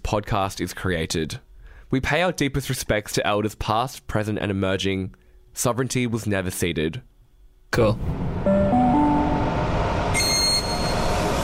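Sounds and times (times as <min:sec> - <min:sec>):
speech: 0:00.1 - 0:07.1, 0:07.7 - 0:08.2
train rumbling at a station platform: 0:08.0 - 0:11.4
brief high-pitched whine: 0:08.1 - 0:11.4
rising three-note chime: 0:08.4 - 0:11.4.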